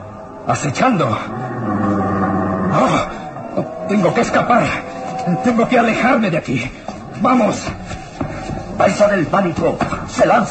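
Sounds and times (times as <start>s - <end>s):
deep rumbling wild beast growling: 0.0s - 7.1s
speech: 0.4s - 2.0s, 2.7s - 8.0s, 8.8s - 10.4s.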